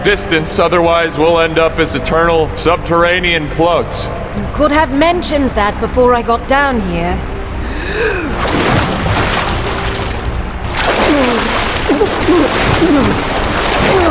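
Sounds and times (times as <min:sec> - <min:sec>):
speech: 0:00.1 - 0:07.3, 0:11.1 - 0:14.1
swimmer's short gasping breaths: 0:07.6 - 0:08.4
strong river current splashing and rushing where the river continues underground: 0:08.2 - 0:14.1.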